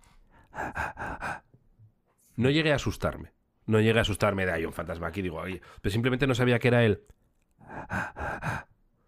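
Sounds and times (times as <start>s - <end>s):
voice imitating heavy breathing heard in a bathroom: 0.4s - 1.5s, 7.6s - 8.8s
speech: 2.4s - 8.6s.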